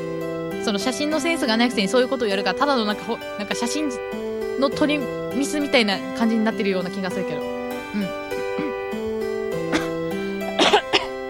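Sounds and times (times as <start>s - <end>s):
speech: 0.6s - 8.2s
person coughing: 7.9s - 8.8s, 9.7s - 11.2s.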